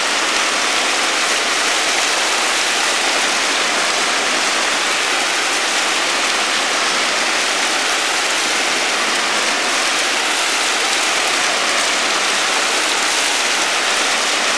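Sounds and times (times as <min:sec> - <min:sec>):
waterfall: 0:00.0 - 0:14.5.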